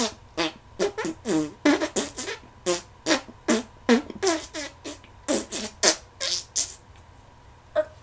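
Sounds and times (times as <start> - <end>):
loud spluttering farts: 0.0 - 6.8.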